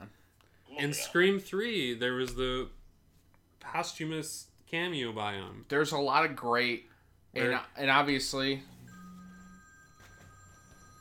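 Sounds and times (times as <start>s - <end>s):
speech: 0.8s - 2.8s, 3.6s - 8.8s
mobile phone ringing faintly: 8.7s - 10.9s.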